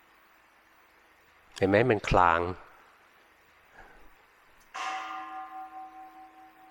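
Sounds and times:
speech: 1.6 - 2.6
temple bell struck with a wooden striker: 4.7 - 6.7.

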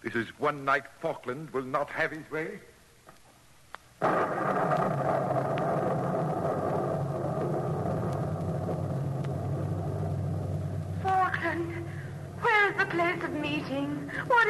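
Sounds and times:
speech: 0.0 - 2.7, 13.6 - 14.4
thunder rumbling in a night storm: 4.0 - 14.4.

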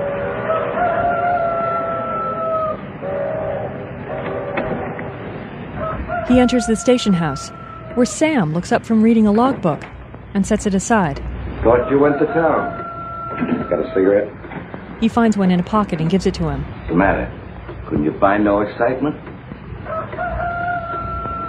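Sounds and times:
rooster crowing: 0.0 - 2.8, 5.8 - 8.0, 11.7 - 14.2, 19.8 - 21.4
steady hum: 0.0 - 21.4
speech: 6.3 - 12.8, 13.4 - 14.4, 15.0 - 19.2.

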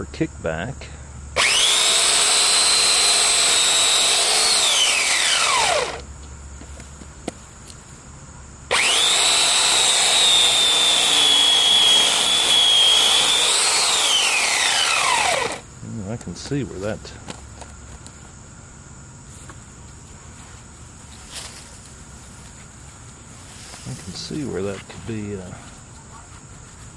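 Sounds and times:
speech: 0.0 - 0.9, 16.4 - 17.3, 24.4 - 25.7
small electric chainsaw cutting a 6-inch branch: 1.4 - 6.1, 8.7 - 15.7.

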